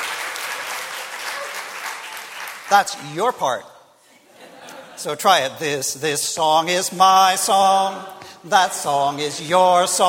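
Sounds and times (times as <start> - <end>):
crowd clapping steadily and densely: 0.0 - 3.4
speech: 2.7 - 3.7, 5.0 - 10.0
laughter: 4.2 - 5.4.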